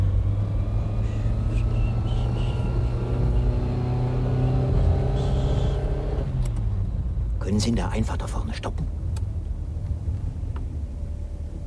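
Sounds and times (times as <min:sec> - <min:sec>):
car engine rumbling while driving fast out of town: 0:00.0 - 0:11.6
speech: 0:07.6 - 0:09.0.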